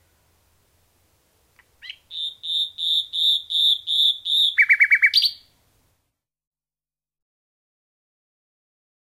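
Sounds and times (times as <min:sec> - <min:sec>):
common nightingale singing whistled notes: 0:01.6 - 0:05.6.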